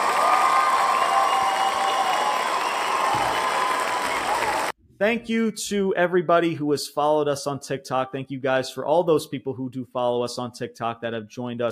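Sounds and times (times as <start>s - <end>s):
crowd applauding: 0.0s - 4.8s
faint cheering: 0.0s - 4.8s
speech: 5.0s - 11.7s.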